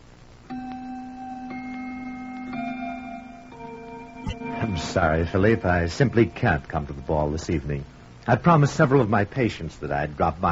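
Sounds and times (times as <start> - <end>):
faint steady hum: 0.0 - 10.4
grandfather clock chiming: 0.5 - 8.0
speech: 4.6 - 10.4.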